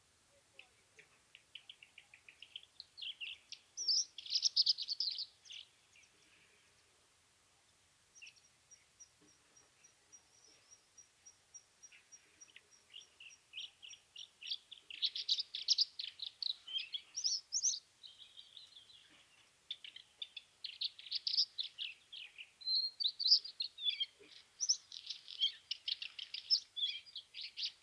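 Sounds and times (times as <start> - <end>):
bluethroat Luscinia svecica singing: 0.6 - 6.4, 8.2 - 27.8.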